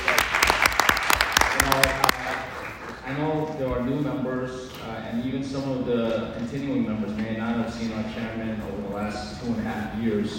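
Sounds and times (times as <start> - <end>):
audience applauding for new board chair: 0.0 - 3.1
speech: 3.7 - 10.3.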